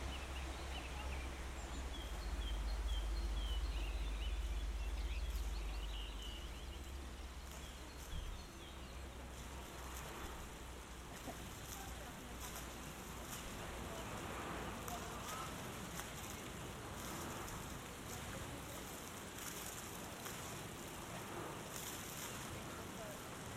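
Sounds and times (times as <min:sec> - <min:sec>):
faint bird chirps by the Ohře river: 0:00.0 - 0:09.5
low engine rumble by the Ohře river: 0:00.0 - 0:23.5
moving water of the Ohře river in North Bohemia: 0:00.0 - 0:23.5.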